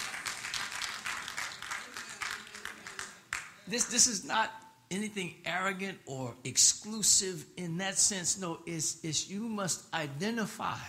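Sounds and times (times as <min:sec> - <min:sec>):
audience clapping in rhythm: 0:00.0 - 0:04.0
speech: 0:03.7 - 0:10.8.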